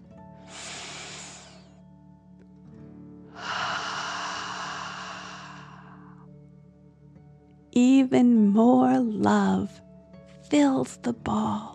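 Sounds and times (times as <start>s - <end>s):
slow deep breath in and out during a calming exercise: 0.4s - 1.8s, 3.3s - 6.3s
speech: 7.8s - 9.8s, 10.5s - 11.7s.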